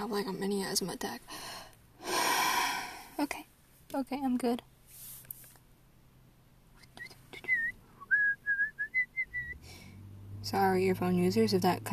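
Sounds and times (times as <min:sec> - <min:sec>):
speech: 0:00.0 - 0:01.7, 0:03.2 - 0:04.7, 0:10.5 - 0:11.9
person whistling: 0:07.0 - 0:09.6.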